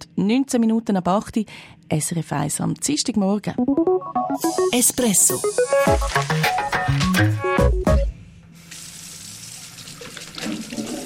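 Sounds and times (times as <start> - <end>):
speech: 0.2 - 7.5
tonal sounds: 3.6 - 7.6
tap water running into a sink during hand washing: 8.7 - 11.0.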